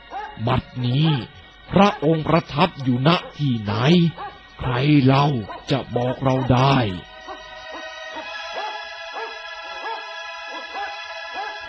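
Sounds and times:
sustained droning musical tone: 0:00.0 - 0:11.6
dog growling and barking in short sharp yips: 0:00.1 - 0:00.4, 0:01.8 - 0:02.1, 0:03.1 - 0:03.4, 0:04.1 - 0:04.4, 0:05.4 - 0:11.6
speech: 0:00.4 - 0:07.1.

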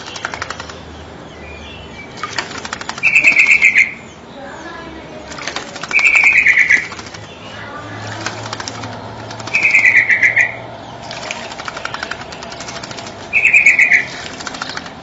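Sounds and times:
Nias hill myna calls: 0:03.0 - 0:04.7, 0:05.4 - 0:08.6, 0:09.4 - 0:10.7, 0:13.3 - 0:14.3.

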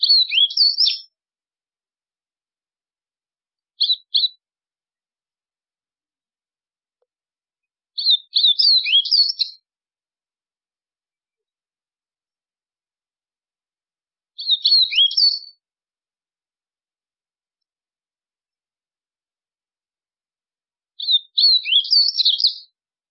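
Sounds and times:
White-throated seedeater twittering: 0:00.0 - 0:01.1, 0:03.8 - 0:04.4, 0:08.0 - 0:09.6, 0:14.4 - 0:15.6, 0:21.0 - 0:22.6.

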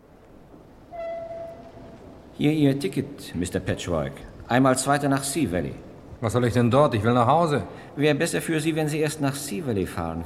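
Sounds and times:
train horn: 0:00.9 - 0:02.0
speech: 0:02.4 - 0:10.2.

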